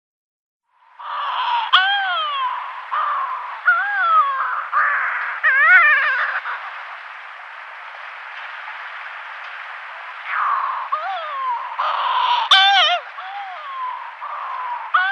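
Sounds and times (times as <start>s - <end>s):
Yelkouan shearwater giving harsh wavering harmonic wails: 1.0s - 7.0s, 10.2s - 15.0s.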